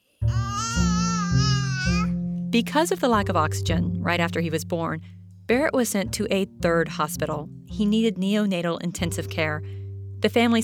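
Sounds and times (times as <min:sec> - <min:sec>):
baby babbling after waking from nap: 0:00.2 - 0:02.2
speech: 0:02.5 - 0:10.6.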